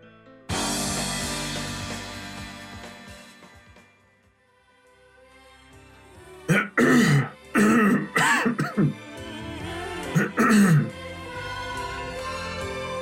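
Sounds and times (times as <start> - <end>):
song playing softly: 0.4 - 13.0
person coughing near the microphone: 6.5 - 9.0, 10.1 - 10.9
throat clearing near the microphone: 6.5 - 9.0, 10.2 - 10.9.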